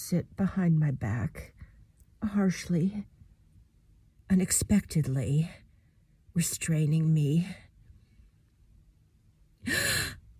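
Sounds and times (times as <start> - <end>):
speech: 0.1 - 1.6, 2.2 - 3.1, 4.3 - 5.6, 6.4 - 7.6, 9.6 - 9.9
sharp breathy gasp of surprise: 9.7 - 10.2.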